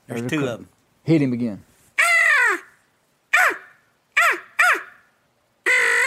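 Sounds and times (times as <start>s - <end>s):
speech: 0.1s - 1.7s
crow call imitating crow cawing: 2.0s - 5.1s, 5.7s - 6.0s.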